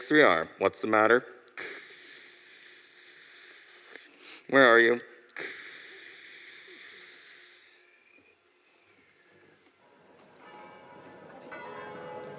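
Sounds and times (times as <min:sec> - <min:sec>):
speech: 0:00.1 - 0:01.8, 0:04.5 - 0:05.6
large bells ringing as an evacuation warning in Vancouver Washington: 0:09.8 - 0:12.3.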